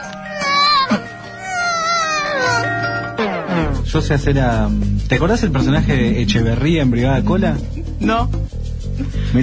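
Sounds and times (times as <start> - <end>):
person imitating a baby crying: 0.1 - 2.9
speech: 4.0 - 9.4.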